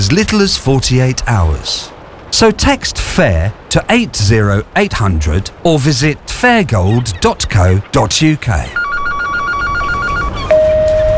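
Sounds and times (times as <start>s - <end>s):
speech: 0.1s - 8.8s
loud steady single telephone tone: 8.7s - 11.1s
unanswered telephone ringing with rapid electronic trilling: 8.8s - 11.1s.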